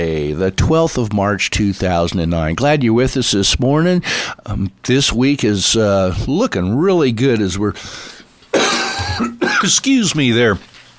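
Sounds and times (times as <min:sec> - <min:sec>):
speech: 0:00.0 - 0:10.8
person coughing: 0:08.5 - 0:09.8
throat clearing: 0:08.6 - 0:09.8.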